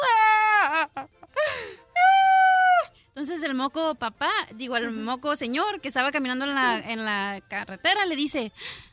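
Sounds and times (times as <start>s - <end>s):
voice imitating a crying child with wailing sobs: 0.0s - 1.1s, 2.0s - 2.9s
speech: 3.6s - 8.9s.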